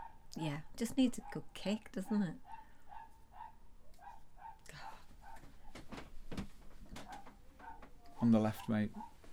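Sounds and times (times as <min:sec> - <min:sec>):
speech: 0:00.4 - 0:02.5, 0:08.2 - 0:09.1
Jack Russell terrier barking: 0:01.2 - 0:05.7, 0:07.0 - 0:09.2.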